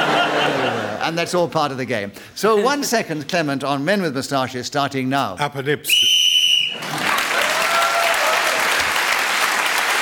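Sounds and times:
laughter: 0.0 - 1.2
speech: 1.1 - 7.2
referee's whistle blast ending a round of a panel game: 5.9 - 6.8
audience applauding: 6.6 - 9.9.

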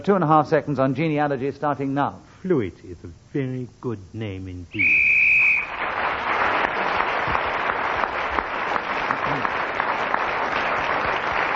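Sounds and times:
speech: 0.0 - 5.1
shrill referee whistle blast ending a round: 4.8 - 5.8
crowd applauding and cheering: 5.0 - 11.5.

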